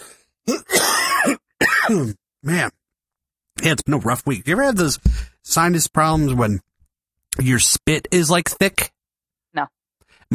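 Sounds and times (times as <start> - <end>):
raspy throat clearing and coughing: 0.4 - 2.7
speech: 0.5 - 2.8, 3.6 - 6.7, 7.4 - 10.3.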